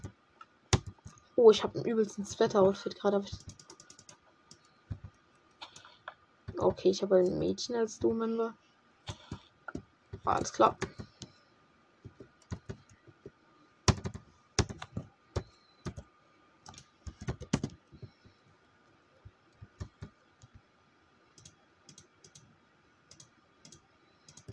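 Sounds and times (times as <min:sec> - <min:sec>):
typing on a computer keyboard: 0:00.8 - 0:01.2, 0:03.3 - 0:06.0, 0:09.1 - 0:11.3, 0:12.1 - 0:13.0, 0:13.9 - 0:16.0, 0:16.7 - 0:18.3, 0:19.6 - 0:20.6, 0:21.4 - 0:22.5, 0:23.1 - 0:24.5
speech: 0:01.4 - 0:03.6, 0:06.8 - 0:08.6, 0:10.3 - 0:11.0.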